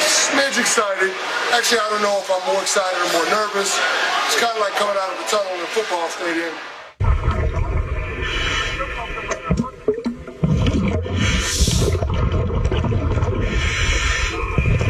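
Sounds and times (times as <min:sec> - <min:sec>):
speech: 0:00.3 - 0:06.7
hissing bursts of exhaled scuba bubbles: 0:07.0 - 0:14.8
diver breathing underwater through scuba gear in a shark tank: 0:08.0 - 0:09.3, 0:10.4 - 0:14.8.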